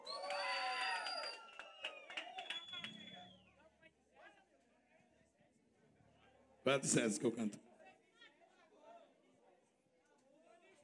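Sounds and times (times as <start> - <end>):
scattered clapping: 0.0 - 3.3
crowd shouting and cheering: 0.0 - 3.4
speech: 6.6 - 7.7.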